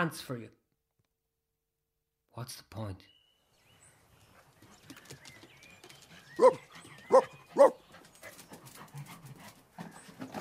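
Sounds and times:
speech: 0:00.0 - 0:00.6, 0:02.4 - 0:03.2, 0:06.4 - 0:07.8
three-legged stray dog barking sharply at a shop door: 0:06.4 - 0:07.8.

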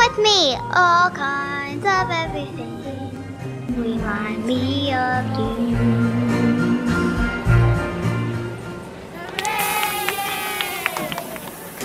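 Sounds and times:
speech: 0:00.2 - 0:03.0, 0:03.7 - 0:06.3
massive crowd murmuring: 0:02.3 - 0:11.8.

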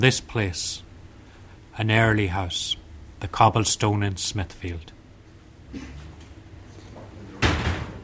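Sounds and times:
speech: 0:00.0 - 0:00.9, 0:01.8 - 0:05.0, 0:05.7 - 0:06.0
door of a pub opening with a heavy clunk: 0:07.4 - 0:08.0.

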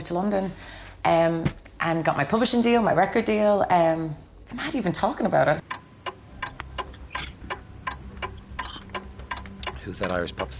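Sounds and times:
low hum: 0:00.0 - 0:10.5
speech: 0:00.1 - 0:05.6, 0:09.9 - 0:10.5
ticking clock timer: 0:05.6 - 0:10.5.

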